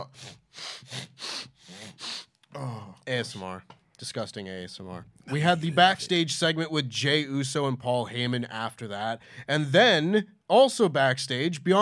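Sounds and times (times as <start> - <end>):
person with a blocked nose sniffling into a microphone: 0.0 - 3.0
speech: 3.1 - 11.8.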